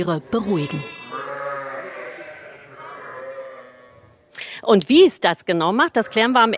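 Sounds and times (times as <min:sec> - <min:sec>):
speech: 0:00.0 - 0:01.0, 0:04.7 - 0:06.5
flock of sheep bleating: 0:00.2 - 0:04.2, 0:05.8 - 0:06.5.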